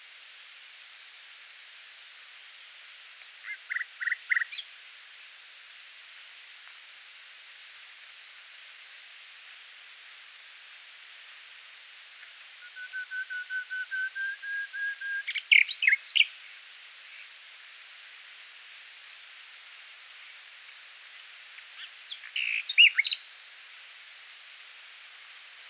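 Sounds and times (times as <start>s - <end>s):
faint hiss: 0.0s - 25.6s
Common nightingale song with whistled notes and sharp chirps: 3.2s - 4.6s, 12.6s - 16.3s, 21.8s - 23.3s, 25.4s - 25.6s
speech: 3.3s - 4.4s.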